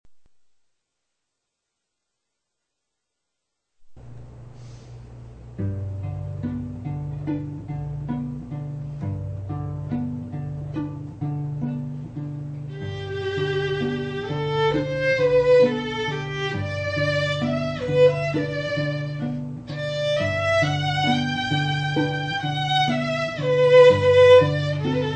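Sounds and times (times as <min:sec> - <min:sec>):
musical trio playing: 0:05.5 - 0:25.1.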